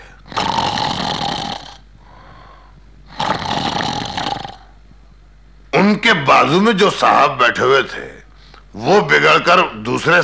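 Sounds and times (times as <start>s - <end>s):
voice imitating the loud snoring of a man asleep: 0.0s - 1.9s, 3.1s - 4.8s
speech: 6.1s - 8.2s, 8.8s - 10.2s.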